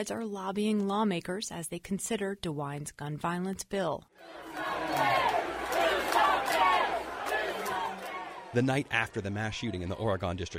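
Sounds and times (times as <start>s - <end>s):
speech: 0.0s - 5.1s, 8.5s - 10.5s
large crowd chanting in unison at a vigil: 4.2s - 10.5s.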